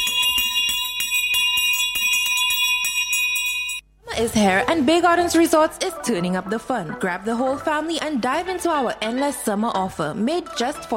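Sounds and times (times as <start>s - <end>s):
loud school bell ringing with rapid metallic clatter: 0.0s - 3.9s
speech: 4.2s - 10.9s.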